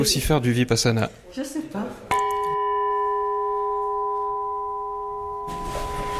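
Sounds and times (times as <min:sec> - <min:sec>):
speech: 0:00.0 - 0:02.1
Burmese gong struck to mark the hours and breaks: 0:02.2 - 0:06.1.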